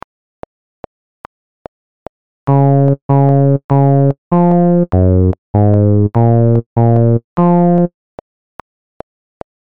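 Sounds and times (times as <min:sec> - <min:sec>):
metronome ticking in 3 4 time: 0:02.5 - 0:07.9.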